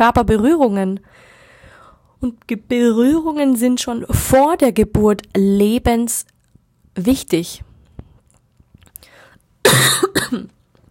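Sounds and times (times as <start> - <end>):
speech: 0.0 - 1.3, 2.2 - 6.3, 7.0 - 7.7, 9.6 - 10.6
harsh broadband coughing: 9.6 - 10.6.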